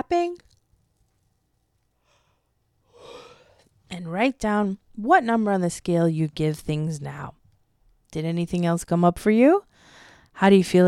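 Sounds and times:
deep breath drawn in: 2.0 - 3.7, 9.8 - 10.3
speech: 4.0 - 7.4, 8.1 - 9.7, 10.4 - 10.8.

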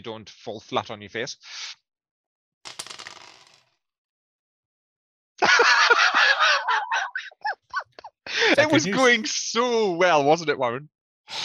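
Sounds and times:
speech: 0.0 - 1.8, 8.5 - 11.4
dice rolled during a tabletop role-playing game: 2.7 - 3.8
laughter: 5.4 - 9.4.

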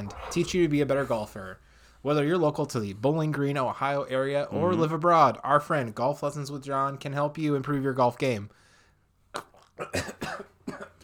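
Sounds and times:
speech: 0.0 - 8.6, 9.3 - 10.9
person coughing: 9.8 - 11.0.

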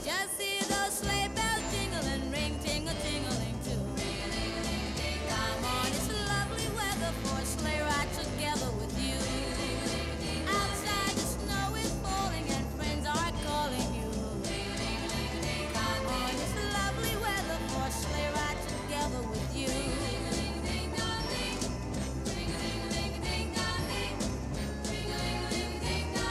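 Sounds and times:
loud dense full-band song with upward key changes: 0.0 - 26.3.

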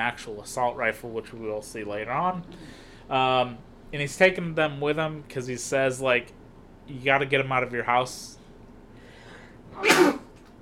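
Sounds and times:
speech: 0.0 - 8.4
person sneezing: 9.7 - 10.4.

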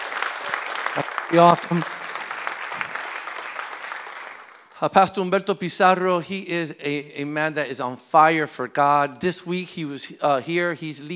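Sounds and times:
audience applauding: 0.0 - 4.8
speech: 1.0 - 2.0, 4.8 - 11.1.

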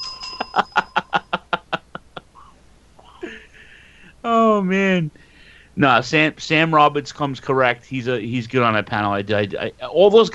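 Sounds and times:
bell ringing with bright metallic strikes: 0.0 - 1.6
laughter: 0.4 - 3.7
speech: 0.6 - 0.9, 5.8 - 10.3.

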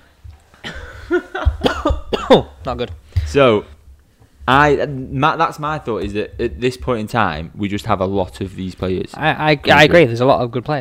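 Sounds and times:
person coughing after choking on nuts: 0.6 - 2.6
speech: 2.3 - 3.8, 4.5 - 10.8.

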